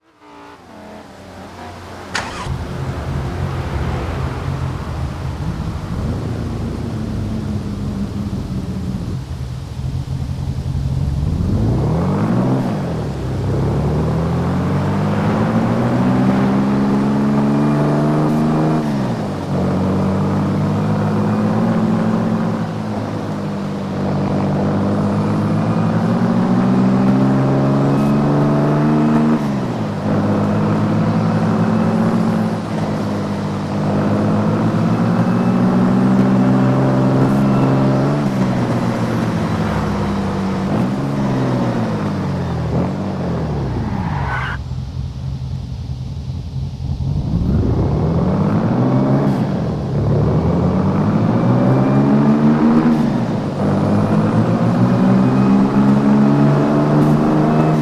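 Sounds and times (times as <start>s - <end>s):
1968 Porsche 911 E engine: 0.0s - 57.8s.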